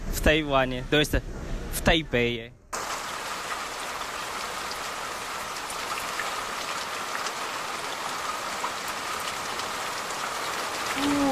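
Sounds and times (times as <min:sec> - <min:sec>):
speech: 0:00.2 - 0:02.6
steady rain on a wet street in Taipei Taiwan on a cold March day: 0:02.8 - 0:11.3.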